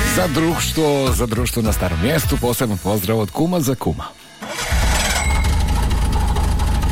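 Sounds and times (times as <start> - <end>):
speech: 0.2 - 4.2
car engine starting: 4.4 - 6.9.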